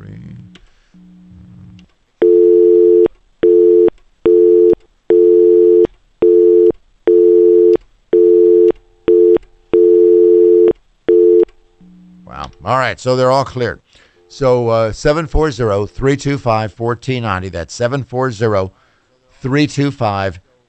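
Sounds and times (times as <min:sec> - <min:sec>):
telephone busy signal: 0:02.2 - 0:11.5
speech: 0:12.6 - 0:18.8, 0:19.4 - 0:20.4.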